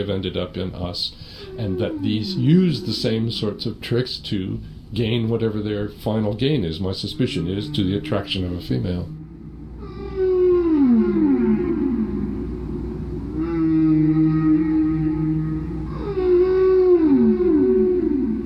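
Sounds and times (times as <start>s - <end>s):
speech: 0.0s - 9.2s
whale song with long moaning tonal calls: 1.3s - 3.6s, 7.2s - 18.4s.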